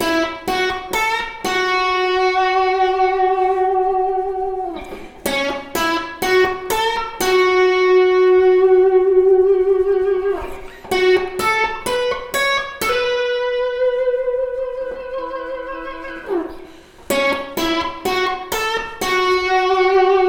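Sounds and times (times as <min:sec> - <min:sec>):
guitar riff of picked notes with string bends: 0:00.0 - 0:20.2.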